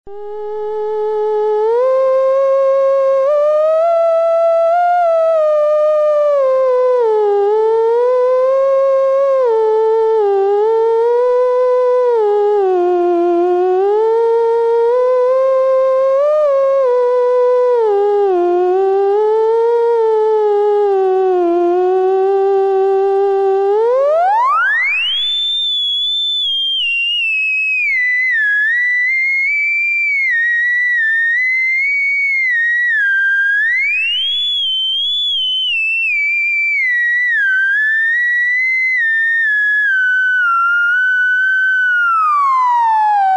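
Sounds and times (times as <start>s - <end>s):
theremin in upper register: 0.1s - 43.3s.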